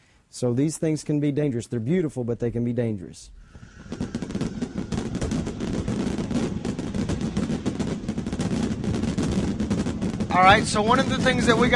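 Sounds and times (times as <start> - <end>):
speech: 0.4 - 4.0, 10.4 - 11.7
low rumble: 3.2 - 8.9
fireworks crackling and popping: 3.3 - 11.7.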